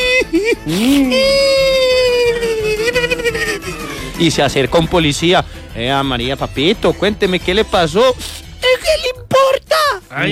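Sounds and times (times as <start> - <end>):
voice imitating a small boy crying with wailing and sobbing: 0.0 - 4.2, 8.4 - 10.2
laughter: 0.0 - 10.2
speech: 0.7 - 1.2, 4.2 - 8.4.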